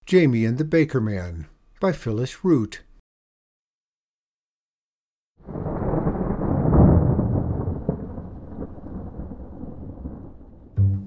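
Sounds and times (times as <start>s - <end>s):
speech: 0.1s - 2.9s
deep rolling rumbles of thunder: 5.4s - 10.8s
heavy rain pouring: 5.4s - 10.8s.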